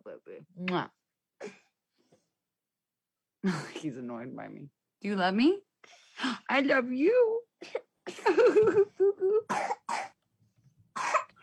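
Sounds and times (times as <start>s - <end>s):
speech: 0.2s - 1.6s, 3.4s - 10.1s
harsh raspy coughs: 9.5s - 10.2s, 11.0s - 11.4s.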